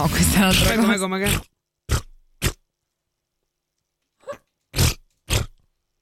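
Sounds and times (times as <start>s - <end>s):
speech: 0.0s - 1.5s
voice imitating armpit farts with the mouth in wet blown raspberries: 1.3s - 2.6s, 4.7s - 5.6s.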